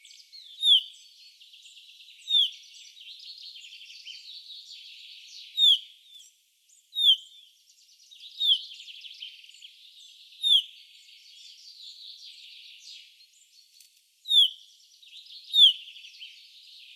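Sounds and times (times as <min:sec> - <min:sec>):
background chatter of bird notes: 0:00.0 - 0:16.9
Common chaffinch (Fringilla coelebs) downward-slurred calls: 0:05.6 - 0:05.8, 0:14.3 - 0:14.6.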